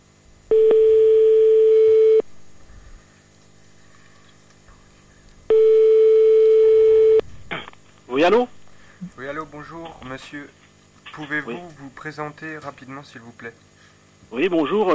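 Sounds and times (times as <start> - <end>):
telephone ringing tone after a number is dialed: 0.5 - 2.2, 5.5 - 7.2
speech: 8.2 - 8.6, 9.2 - 10.6, 11.2 - 13.7, 14.3 - 14.9.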